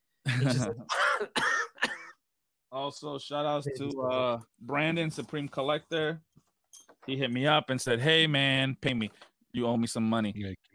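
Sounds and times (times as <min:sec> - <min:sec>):
speech: 0:00.4 - 0:01.9, 0:02.7 - 0:10.7
person imitating a harsh wheezy emphysema cough: 0:00.5 - 0:02.2.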